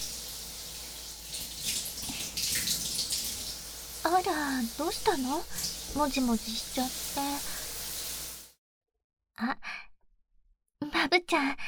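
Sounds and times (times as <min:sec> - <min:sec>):
shower water running: 0:00.0 - 0:08.5
speech: 0:04.1 - 0:07.5, 0:09.4 - 0:09.7, 0:11.2 - 0:11.6.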